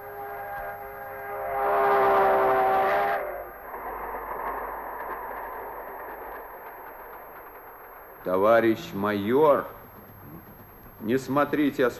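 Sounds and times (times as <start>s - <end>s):
train whistle blowing: 0.0s - 3.6s
train rumbling past with rolling clatter of wheels: 0.0s - 11.9s
speech: 8.3s - 9.8s, 11.0s - 11.9s.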